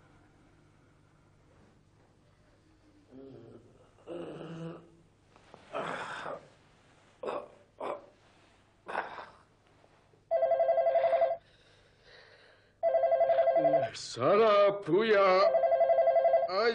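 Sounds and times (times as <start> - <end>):
telephone ringing in trilling bursts: 10.3 - 11.4, 12.8 - 14.0, 15.4 - 16.7
speech: 14.0 - 15.6, 16.5 - 16.7.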